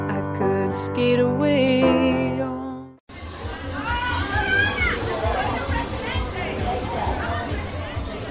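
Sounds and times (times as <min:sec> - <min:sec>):
music at a street festival: 0:00.0 - 0:08.2
speech: 0:00.7 - 0:02.5
children shouting while playing carnival games: 0:03.3 - 0:08.2.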